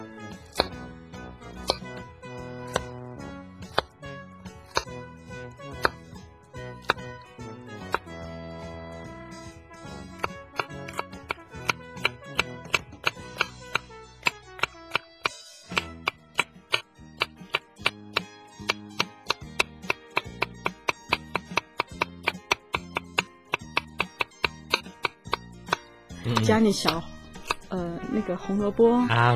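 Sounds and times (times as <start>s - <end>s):
soft music: 0.0s - 29.3s
knife dicing cucumber on a cutting board: 0.5s - 0.8s, 1.6s - 1.9s, 4.6s - 5.0s, 10.2s - 27.6s
speech: 26.5s - 27.1s, 27.7s - 29.3s.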